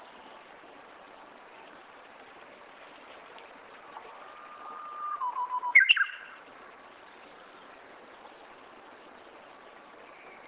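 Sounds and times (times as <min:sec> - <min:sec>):
Japanese bush warbler singing: 0:05.0 - 0:06.4.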